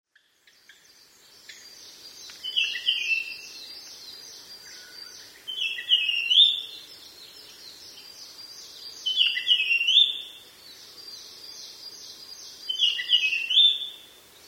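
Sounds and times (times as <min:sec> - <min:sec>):
Japanese grosbeak whistled song phrase: 0:01.4 - 0:06.8, 0:08.9 - 0:10.3, 0:11.6 - 0:14.0.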